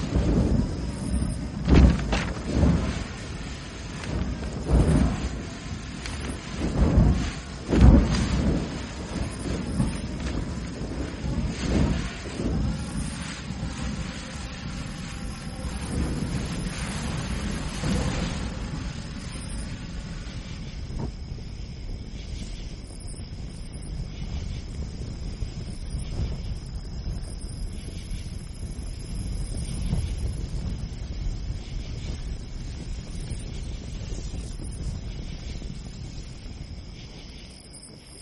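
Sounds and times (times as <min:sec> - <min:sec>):
faint high whine: 0:00.0 - 0:38.1
gusty wind blowing through a pine forest beside a tent: 0:00.0 - 0:38.1
heavy thumps: 0:01.6 - 0:03.0.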